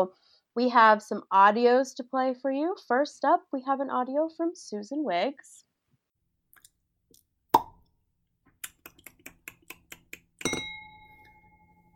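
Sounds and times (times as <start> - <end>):
speech: 0.0 - 5.7
champagne cork popping: 7.5 - 7.9, 8.6 - 10.8
bright glass clink: 10.4 - 11.9.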